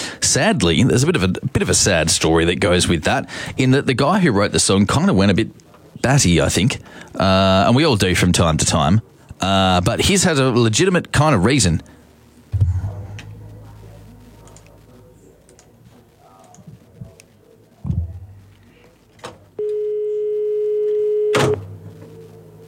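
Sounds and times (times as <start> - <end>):
speech: 0.3 - 12.0
faint handling noises: 12.0 - 19.6
dull thumps: 12.5 - 14.9, 17.8 - 18.5
telephone ringing with a loud sustained electronic tone: 19.6 - 22.6.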